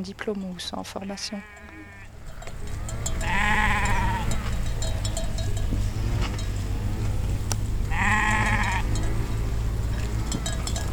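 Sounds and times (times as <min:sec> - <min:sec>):
speech: 0:00.0 - 0:01.6
faint outdoor noise: 0:00.0 - 0:10.9
Merino ewes bleating: 0:01.1 - 0:02.1, 0:02.9 - 0:04.6, 0:07.9 - 0:09.0
steady low rumble: 0:01.4 - 0:10.9.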